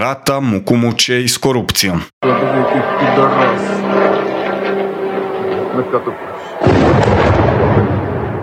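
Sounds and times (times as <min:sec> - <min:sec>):
speech: 0:00.0 - 0:04.4, 0:05.8 - 0:07.4
Russian attack drones flying over southern Odesa region at night: 0:02.2 - 0:08.4
loud broadband roar: 0:02.2 - 0:08.4.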